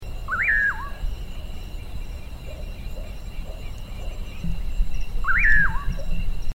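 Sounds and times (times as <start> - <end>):
common pauraque Nyctidromus albicollis giving whistled calls: 0.3 - 1.0, 5.2 - 6.3.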